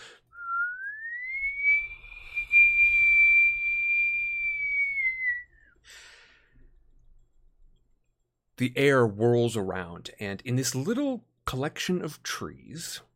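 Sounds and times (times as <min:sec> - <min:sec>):
piercing high-pitched whistle: 0:00.4 - 0:05.8
speech: 0:08.6 - 0:13.1.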